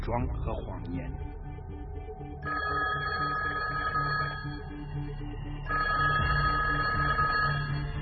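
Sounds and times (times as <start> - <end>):
speech: 0.1 - 1.4
telephone ringing: 2.4 - 4.7, 5.7 - 7.9.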